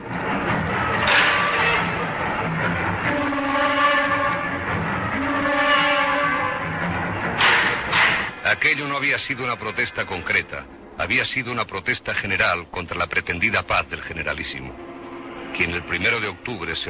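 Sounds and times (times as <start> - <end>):
tram tonal whines: 0.0 - 8.4, 14.4 - 16.8
tram rolling along rails with metallic rumble: 0.0 - 16.8
tram clanks: 0.9 - 2.2, 7.2 - 8.6
speech: 8.6 - 16.8.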